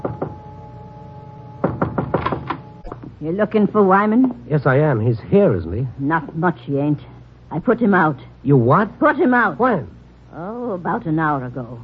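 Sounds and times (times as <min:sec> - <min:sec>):
knocking on a wooden door: 0:00.0 - 0:00.4, 0:01.6 - 0:03.2
speech: 0:03.2 - 0:11.8.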